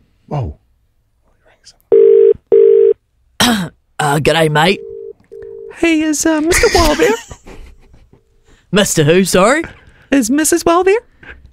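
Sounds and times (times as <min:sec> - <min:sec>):
telephone ringing tone with electronic buzzes: 0:01.9 - 0:03.0, 0:04.8 - 0:05.8
speech: 0:04.1 - 0:04.9, 0:05.8 - 0:07.4, 0:08.7 - 0:11.4
laughter: 0:06.5 - 0:08.2.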